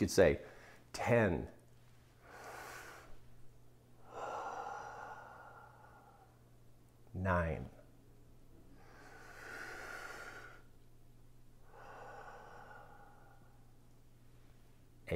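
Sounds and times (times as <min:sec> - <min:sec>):
speech: 0:00.0 - 0:01.6, 0:07.2 - 0:07.8
faint steady hum: 0:00.0 - 0:15.1
slow deep breaths during a stress-calming exercise: 0:00.4 - 0:00.9, 0:01.8 - 0:06.5, 0:08.6 - 0:10.8, 0:11.6 - 0:15.0.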